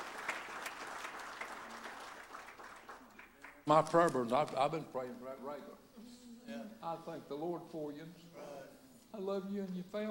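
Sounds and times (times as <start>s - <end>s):
audience applauding: 0.0s - 3.6s
speech: 3.7s - 8.5s, 9.1s - 10.0s.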